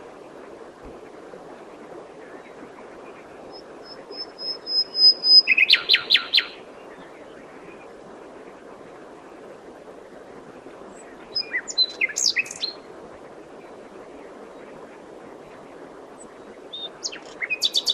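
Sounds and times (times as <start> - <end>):
common nightingale Luscinia megarhynchos singing: 4.1 - 6.6, 11.3 - 12.8, 16.7 - 17.9.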